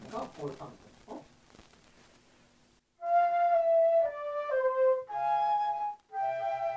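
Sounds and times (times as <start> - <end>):
person talking: 0.0 - 1.3
two flutes playing a slow melody in unison: 3.0 - 6.7.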